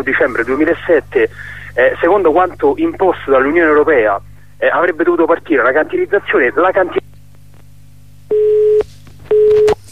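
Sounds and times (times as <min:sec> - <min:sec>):
speech: 0:00.0 - 0:07.1
telephone busy tone after a dropped call: 0:08.3 - 0:09.8.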